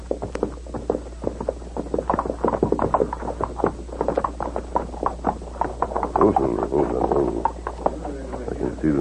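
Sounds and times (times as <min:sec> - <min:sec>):
many horses' hooves clip-clopping: 0:00.0 - 0:08.9.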